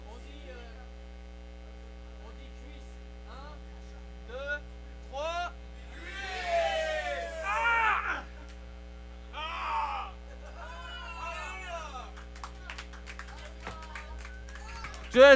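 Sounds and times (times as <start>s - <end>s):
steady electrical hum: 0.0s - 15.3s
laughter: 5.8s - 8.6s, 9.3s - 15.3s
person screaming and wailing into a sacrificial microphone at an absurdist fair in Montreal: 5.9s - 8.3s, 9.4s - 12.0s.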